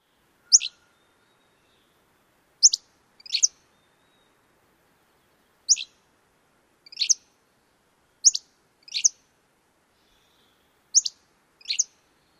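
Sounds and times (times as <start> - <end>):
Hammond's Flycatcher song: 5.7 - 5.9, 6.9 - 7.2, 8.2 - 9.2, 10.0 - 12.3.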